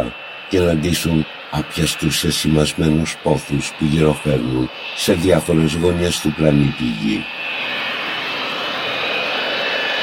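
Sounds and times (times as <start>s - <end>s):
speech: 0.0s - 7.9s
airplane engine droning in flight: 0.0s - 10.0s
faint high whine: 0.0s - 10.0s.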